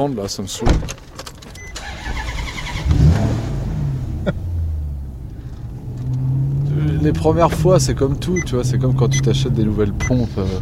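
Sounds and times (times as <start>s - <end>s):
speech: 0.0s - 1.0s, 4.2s - 4.4s, 7.0s - 10.6s
Maserati GranTurismo Ferrari engine revving: 1.9s - 10.6s.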